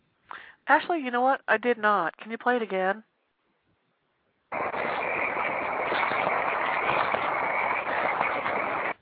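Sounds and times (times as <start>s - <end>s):
speech: 0.7s - 3.1s
chorus of frogs croaking at night: 4.5s - 9.0s.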